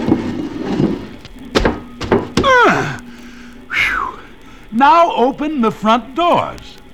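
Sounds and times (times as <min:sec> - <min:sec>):
piano landing on a man's back with heavy wooden thuds: 0:00.0 - 0:03.6
speech: 0:04.8 - 0:06.8.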